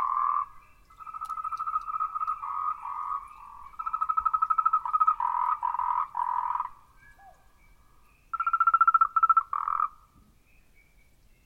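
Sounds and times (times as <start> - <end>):
frog calling in quick pulsed trills and rapid pulsing croaks: 0.0 - 6.8, 8.3 - 10.0.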